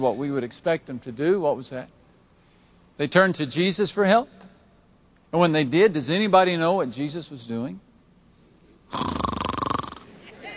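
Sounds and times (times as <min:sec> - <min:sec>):
speech: 0:00.0 - 0:02.0, 0:03.0 - 0:04.5, 0:05.3 - 0:07.9, 0:08.9 - 0:09.1
voice imitating snoring: 0:08.9 - 0:10.1.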